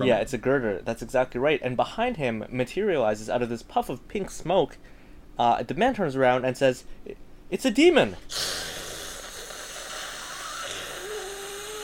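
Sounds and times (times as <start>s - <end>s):
speech: 0.0s - 8.7s
steady hiss of escaping steam: 8.3s - 11.8s.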